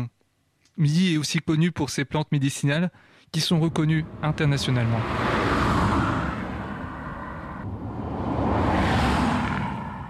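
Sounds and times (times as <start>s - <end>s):
speech: 0.8s - 5.4s
vehicles passing on a road: 3.6s - 10.0s.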